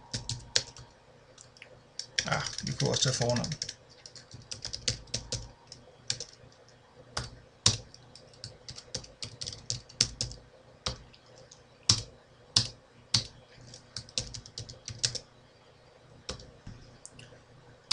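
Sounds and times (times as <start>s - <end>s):
typing on a computer keyboard entering contacts into a list: 0.1s - 0.9s, 2.0s - 15.2s, 16.3s - 16.5s
speech: 2.3s - 3.7s.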